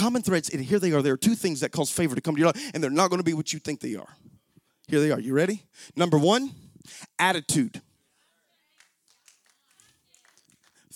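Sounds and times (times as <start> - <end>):
speech: 0.0 - 4.3, 4.9 - 7.9
two people clapping: 8.8 - 10.9.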